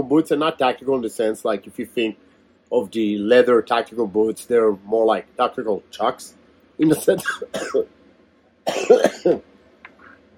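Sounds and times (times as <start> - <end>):
speech: 0.0 - 8.0, 8.7 - 9.5
harsh raspy cough: 7.1 - 7.9, 8.7 - 9.4.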